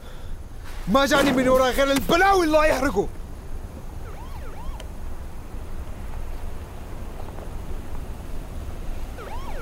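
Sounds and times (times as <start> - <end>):
steady rough rumbling background: 0.0 - 9.5
speech: 0.9 - 3.2
siren of an approaching car wailing: 3.9 - 5.0, 9.1 - 9.5.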